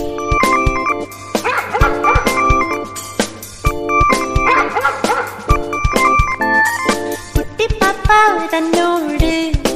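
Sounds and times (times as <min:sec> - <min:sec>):
bouncy steady musical backing: 0:00.0 - 0:09.7
white puppy barking and yipping: 0:01.3 - 0:02.8, 0:04.3 - 0:05.6.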